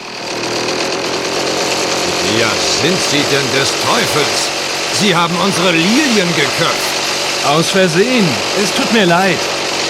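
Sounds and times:
small lawn mower engine running: 0.0 - 9.8
speech: 2.4 - 9.5.

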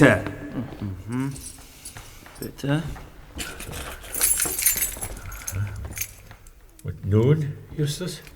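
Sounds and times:
speech: 0.0 - 1.4, 2.4 - 3.9, 6.8 - 8.3
bunch of keys jangling: 1.0 - 7.3.

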